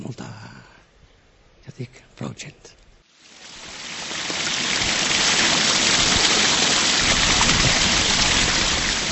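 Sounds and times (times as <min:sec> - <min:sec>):
speech: 0:01.8 - 0:02.8
water rushing at an irrigation pond: 0:03.1 - 0:09.0.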